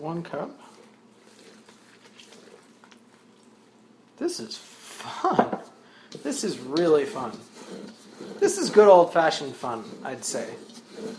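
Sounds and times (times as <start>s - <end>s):
speech: 0.0s - 0.8s, 4.2s - 11.1s
faint wet squishes of bread dough: 0.9s - 3.9s
water poured and stirred into bread dough: 1.2s - 3.8s.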